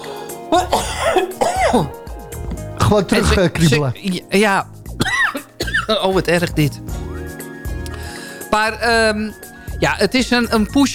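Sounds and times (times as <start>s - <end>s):
speech: 0.5s - 2.0s, 2.9s - 4.7s, 5.9s - 6.9s, 8.5s - 10.9s
tickly cough: 0.5s - 2.0s, 5.0s - 6.0s.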